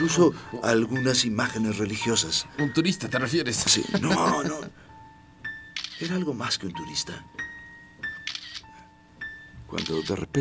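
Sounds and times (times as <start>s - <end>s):
speech: 0.0s - 4.8s, 6.0s - 7.4s, 9.7s - 10.3s
laughter: 3.6s - 4.7s
Kiev 4M film camera film-advance ratcheting: 5.8s - 6.2s, 8.2s - 8.7s, 9.8s - 10.2s
Kiev 4M film camera mechanical shutter clicking: 5.8s - 6.2s, 8.2s - 8.7s, 9.8s - 10.2s.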